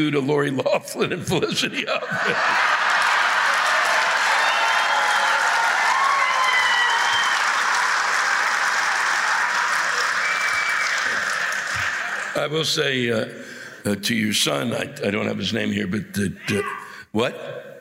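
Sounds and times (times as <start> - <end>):
speech: 0.0 - 2.8, 12.4 - 17.6
laughter: 0.5 - 4.0
sustained audience applause: 2.2 - 12.7.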